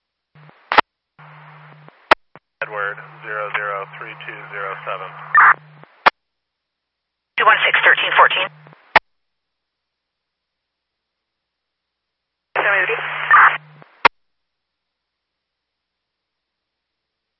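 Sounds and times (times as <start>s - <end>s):
low hum: 0.4s - 6.0s
crackly two-way radio static: 0.4s - 6.1s, 7.4s - 9.0s, 12.6s - 14.1s
speech: 2.7s - 5.7s, 7.9s - 8.7s.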